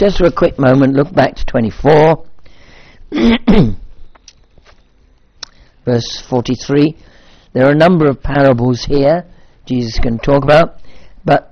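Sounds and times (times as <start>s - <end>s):
speech: 0.0s - 2.3s, 3.1s - 3.8s, 5.8s - 11.5s
person coughing with a hacking cough: 3.1s - 3.8s.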